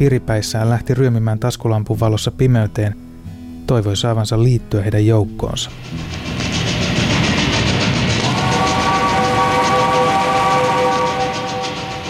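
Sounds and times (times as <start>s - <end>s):
speech: 0.0s - 3.0s, 3.7s - 6.5s
sustained metallic ringing tone: 5.7s - 12.0s
train rumbling along the rails: 5.7s - 12.0s.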